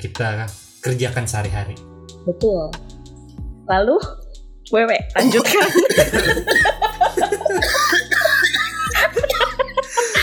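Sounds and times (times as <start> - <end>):
speech: 0.0 - 2.8, 3.7 - 6.8
laughter-like vocal sounds: 5.2 - 10.2
person faking loud coughs: 5.2 - 10.2.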